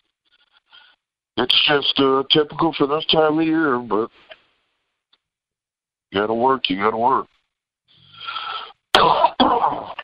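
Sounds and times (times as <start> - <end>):
speech: 1.4 - 4.3, 6.1 - 7.4
softer breathy lead-in: 8.0 - 8.9
harsh raspy coughs from someone with a small lingering cough: 8.9 - 10.0.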